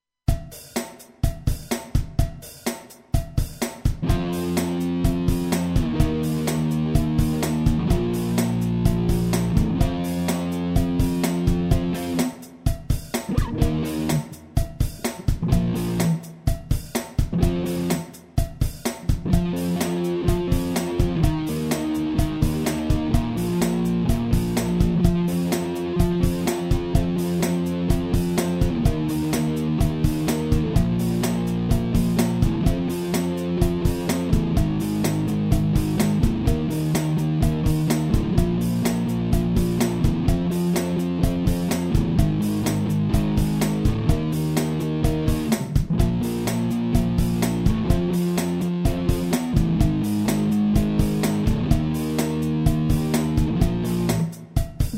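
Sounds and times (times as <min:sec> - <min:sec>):
various rock rhythms: 0:00.3 - 0:54.9.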